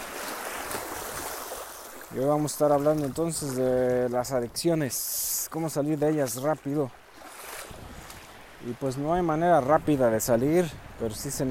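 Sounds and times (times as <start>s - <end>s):
sea waves rolling onto a shore: 0.0s - 11.4s
speech: 2.1s - 7.0s, 8.6s - 11.4s.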